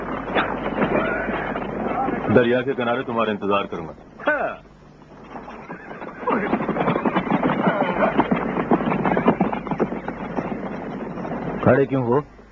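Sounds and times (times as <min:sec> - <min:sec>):
low rumble of wind noise: 0:00.0 - 0:12.5
speech: 0:02.3 - 0:04.6, 0:11.7 - 0:12.4
horse neighing: 0:05.6 - 0:08.6.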